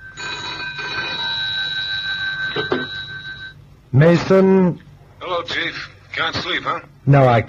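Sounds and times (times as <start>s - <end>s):
telephone bell ringing by a bedside at night: 0.0s - 3.6s
speech: 2.6s - 3.0s, 3.9s - 4.8s, 5.4s - 7.4s.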